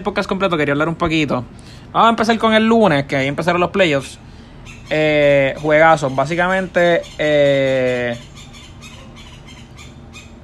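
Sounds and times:
speech: 0:00.0 - 0:04.2, 0:04.9 - 0:08.3
steady low mechanical rumble: 0:00.0 - 0:10.4
birds chirping: 0:01.5 - 0:10.4.

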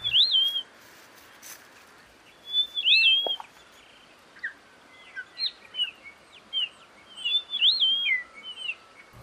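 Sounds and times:
grey monjita giving short high whistled calls: 0:00.0 - 0:00.7, 0:02.3 - 0:03.6, 0:04.4 - 0:09.2
steady hiss: 0:00.0 - 0:09.2.

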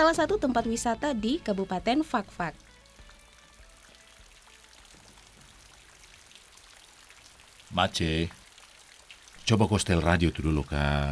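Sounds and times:
speech: 0:00.0 - 0:02.6, 0:07.7 - 0:08.4, 0:09.5 - 0:11.1
steady rain falling: 0:02.6 - 0:11.1.

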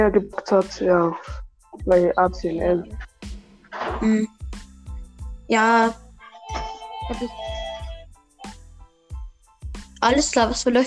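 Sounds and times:
speech: 0:00.0 - 0:03.1, 0:03.8 - 0:04.4, 0:05.5 - 0:07.5, 0:10.0 - 0:10.8
phone ringing with melodic electronic ringtone: 0:06.4 - 0:08.6.

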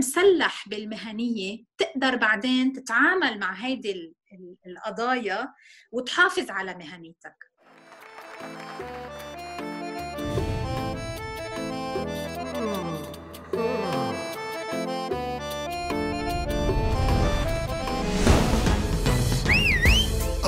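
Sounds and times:
speech: 0:00.0 - 0:07.5
busy music-like background: 0:07.8 - 0:20.4
person whistling with strong vibrato: 0:12.5 - 0:14.2, 0:19.3 - 0:20.3.

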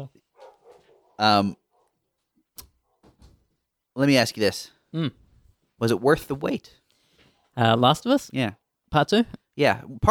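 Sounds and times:
dog barking outside: 0:00.3 - 0:02.0, 0:02.8 - 0:03.2
speech: 0:01.2 - 0:01.6, 0:04.0 - 0:05.2, 0:05.8 - 0:06.8, 0:07.6 - 0:10.0.

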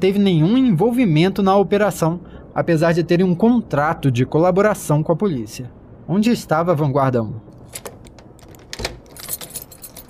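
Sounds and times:
speech: 0:00.0 - 0:07.9
apartment door lock clunk: 0:07.6 - 0:10.0
keys jingling: 0:07.6 - 0:10.0.

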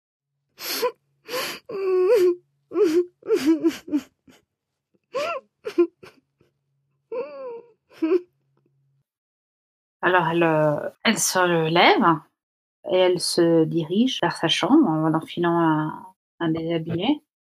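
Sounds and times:
gasping breaths: 0:00.6 - 0:04.3
person sobbing muffled behind a closed bedroom door: 0:00.6 - 0:04.4, 0:05.2 - 0:06.2, 0:07.1 - 0:08.2
speech: 0:10.1 - 0:12.3, 0:12.9 - 0:17.2.

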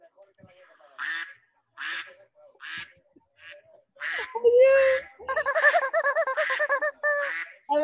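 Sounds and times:
duckling quacking: 0:01.0 - 0:07.6
pulsed bouncy calls: 0:04.2 - 0:07.3.

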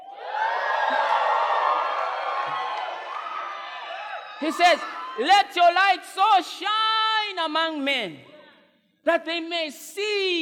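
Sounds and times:
large audience screaming and cheering: 0:00.0 - 0:05.2
speech: 0:04.4 - 0:08.3, 0:09.0 - 0:10.4.

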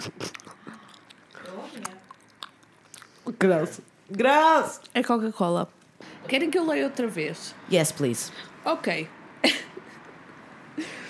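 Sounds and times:
wet chewing of a gummy candy: 0:00.0 - 0:03.5
speech: 0:03.4 - 0:09.6.

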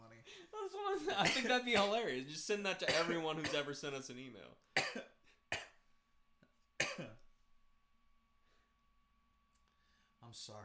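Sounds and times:
speech: 0:00.3 - 0:05.0, 0:10.3 - 0:10.6
person coughing into microphone: 0:01.2 - 0:02.1, 0:02.8 - 0:03.7, 0:04.8 - 0:05.8, 0:06.8 - 0:07.2.

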